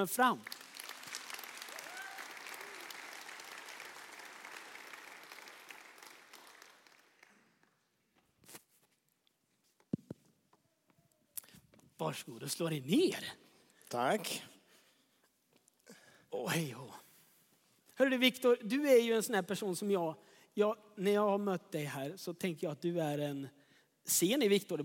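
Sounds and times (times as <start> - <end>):
speech: 0.0 - 0.6, 12.0 - 14.5, 16.3 - 17.0, 18.0 - 24.8
warm audience applause: 0.0 - 7.8.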